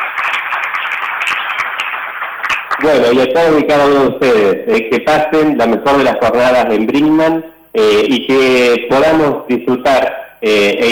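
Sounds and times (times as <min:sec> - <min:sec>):
crowd applauding at a gathering in Brinkmann: 0:00.0 - 0:03.6
speech: 0:02.8 - 0:10.9.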